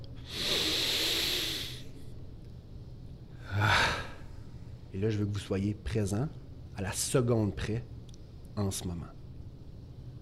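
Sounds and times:
long deep inhalation: 0.2 - 1.9
speech: 5.0 - 8.0, 8.6 - 9.2.

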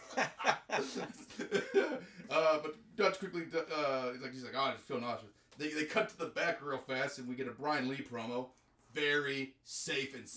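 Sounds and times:
laughter: 0.0 - 4.2
speech: 0.2 - 10.3
man coughing harshly acting sick: 1.4 - 2.4.

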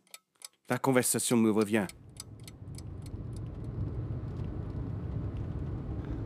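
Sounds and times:
speech: 0.7 - 2.0
older-model taxi engine and road noise in city streets: 1.6 - 6.2.

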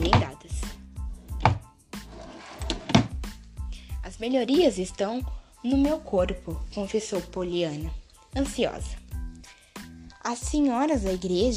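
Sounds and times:
wooden dresser drawers sliding open and shut: 1.4 - 3.2
speech: 4.2 - 9.0, 10.3 - 11.5.

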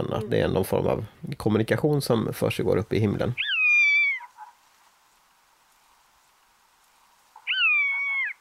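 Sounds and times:
speech: 0.0 - 3.5
faint patter: 0.0 - 8.3
common buzzard mewing contact calls: 3.4 - 4.6, 7.4 - 8.3.

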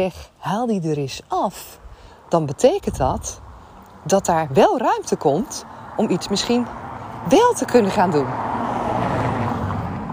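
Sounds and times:
speech: 0.0 - 3.4, 4.0 - 8.6
car driving fast through a residential neighbourhood: 8.3 - 10.1.

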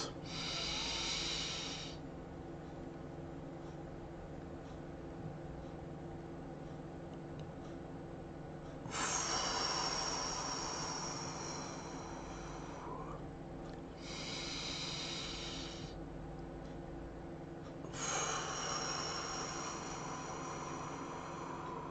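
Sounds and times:
deep airy breathing: 0.0 - 2.0, 8.8 - 16.0, 17.8 - 21.9
low steady hum: 0.0 - 21.9.

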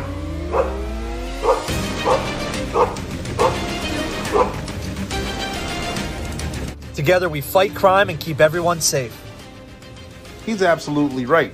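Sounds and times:
police dog barking: 0.0 - 4.7
low vehicle rumble: 0.0 - 6.8
speech: 7.1 - 9.2, 10.4 - 11.5.

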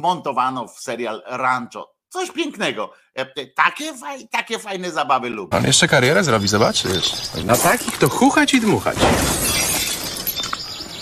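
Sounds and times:
speech: 0.0 - 9.6
greenhouse glass smashed by a ball: 7.5 - 10.8
greenhouse glass shards falling and tinkling: 9.1 - 10.8.

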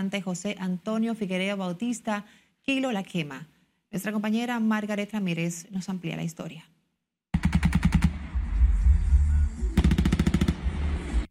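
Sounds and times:
speech: 0.0 - 6.8
machine gun fire during shootouts in Cambita, San Cristóbal: 7.4 - 8.4, 9.8 - 11.1.

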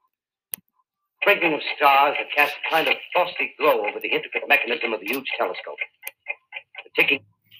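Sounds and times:
person talking: 1.2 - 6.0, 6.7 - 7.3
Swiss clockwork mechanism of a huge telescope ticking in a dark observatory dome: 1.2 - 7.2.

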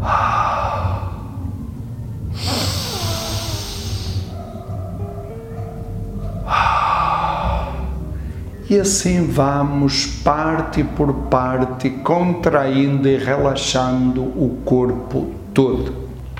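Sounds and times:
person breathing in and out during a relaxation exercise: 0.0 - 1.6, 2.3 - 4.4, 6.5 - 8.6
steady low background: 0.0 - 16.3
speech: 8.7 - 16.0.

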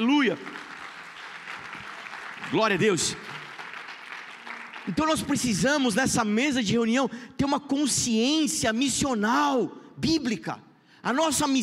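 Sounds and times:
speech: 0.0 - 0.7, 2.5 - 3.4, 4.8 - 11.6
church audience applauding: 0.0 - 5.8.

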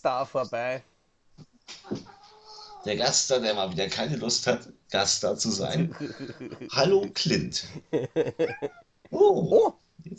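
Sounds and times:
speech: 0.0 - 2.2, 2.8 - 10.1
cat chirping and meowing: 1.8 - 3.1
laughter: 5.7 - 8.9.

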